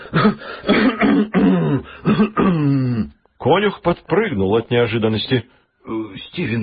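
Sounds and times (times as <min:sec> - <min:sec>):
person clearing throat with polite ahem coughs: 0:00.0 - 0:03.2
speech: 0:00.1 - 0:06.6.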